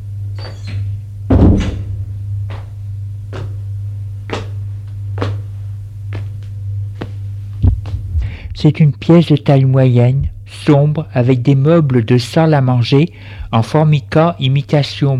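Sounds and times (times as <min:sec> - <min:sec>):
steady low electrical hum: 0:00.0 - 0:15.1
speech: 0:00.4 - 0:00.9, 0:08.6 - 0:15.1
door opening with a heavy thunk and rattle: 0:00.4 - 0:01.9.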